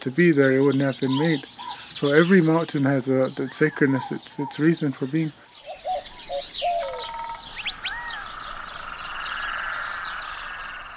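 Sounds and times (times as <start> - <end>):
speech: 0.0 - 5.4
frogs calling outdoors: 0.0 - 10.9.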